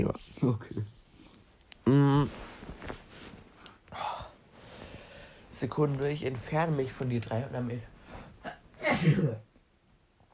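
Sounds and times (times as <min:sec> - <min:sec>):
speech: 0:00.0 - 0:00.9, 0:01.9 - 0:02.5, 0:05.6 - 0:07.9, 0:09.0 - 0:09.4
person sneezing forcefully: 0:08.4 - 0:09.4.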